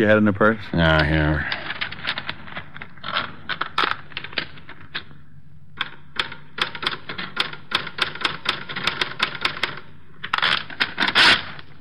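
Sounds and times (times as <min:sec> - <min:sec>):
speech: 0:00.0 - 0:01.6
low hum: 0:00.0 - 0:11.7
rapid mechanical typewriter keystrokes: 0:05.8 - 0:09.9.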